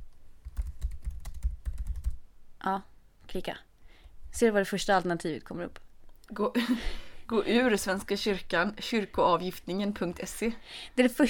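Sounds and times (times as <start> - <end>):
typing a search on a computer keyboard: 0.4 - 2.2
speech: 2.6 - 3.7, 4.3 - 11.2.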